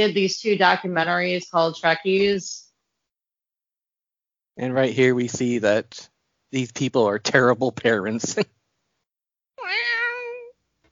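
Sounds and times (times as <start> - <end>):
speech: 0.0 - 2.6, 4.6 - 8.6
cat meowing: 9.6 - 10.5.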